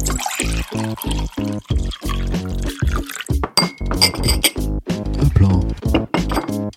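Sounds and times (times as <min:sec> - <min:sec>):
water pouring into a glass: 0:00.0 - 0:04.6
speech: 0:00.9 - 0:04.5
glass clinks: 0:03.4 - 0:04.6, 0:06.0 - 0:06.6.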